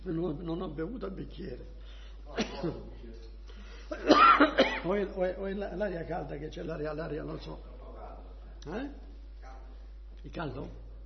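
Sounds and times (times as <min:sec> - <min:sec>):
speech: 0:00.0 - 0:03.3, 0:03.9 - 0:07.7, 0:08.6 - 0:09.0, 0:10.2 - 0:10.8
person coughing: 0:02.4 - 0:02.8, 0:03.9 - 0:04.9.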